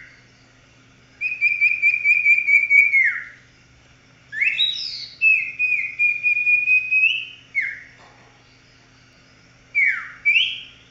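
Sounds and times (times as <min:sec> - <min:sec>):
faint low electrical hum: 0:00.0 - 0:10.8
Oriental magpie-robin whistling song: 0:01.2 - 0:03.4, 0:04.3 - 0:08.0, 0:08.6 - 0:10.8.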